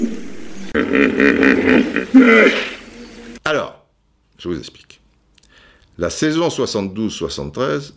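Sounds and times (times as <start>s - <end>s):
hippopotamus grunting and honking in deep bellows: 0.7s - 3.2s
speech: 1.4s - 2.7s, 4.4s - 5.0s, 6.0s - 7.9s.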